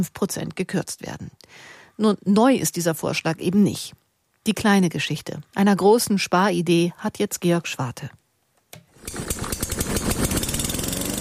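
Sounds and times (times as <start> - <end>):
speech: 0.0 - 8.2
small petrol lawn mower engine running: 8.9 - 11.1.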